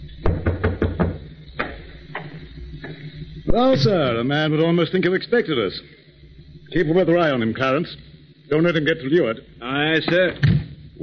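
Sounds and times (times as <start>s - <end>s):
person knocking on a door: 0.2s - 1.2s
speech: 3.6s - 6.0s, 6.7s - 11.0s.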